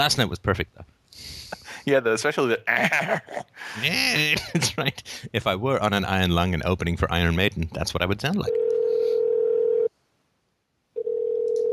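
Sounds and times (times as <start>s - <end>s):
speech: 0.0s - 8.7s
telephone dial tone: 8.5s - 9.9s, 11.0s - 11.7s.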